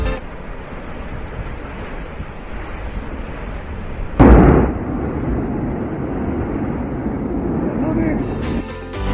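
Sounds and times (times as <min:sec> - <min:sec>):
volcano erupting with deep continuous rumbling: 0:00.2 - 0:09.0
harsher roaring volcanic blast of noise: 0:04.1 - 0:08.7
volcano explosive burst: 0:04.2 - 0:08.2.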